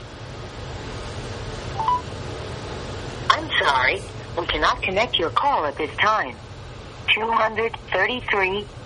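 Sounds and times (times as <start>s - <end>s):
steady low hum: 0.0s - 8.8s
single short phone tone: 1.8s - 2.0s.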